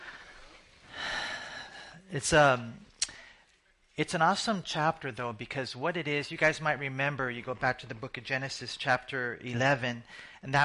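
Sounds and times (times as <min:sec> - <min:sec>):
deep breath drawn in with a breathy rush: 0:00.0 - 0:02.1, 0:10.1 - 0:10.4
speech: 0:02.1 - 0:02.9, 0:04.0 - 0:10.6.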